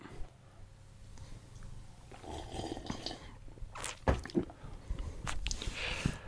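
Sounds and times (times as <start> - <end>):
lip and swallowing noises: 1.1 - 5.9
person sipping a drink: 1.1 - 6.0
slurping gulp: 2.1 - 4.5.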